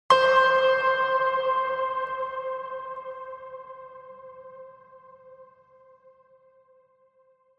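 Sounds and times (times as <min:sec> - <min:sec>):
trailer piano ping: 0:00.1 - 0:03.7.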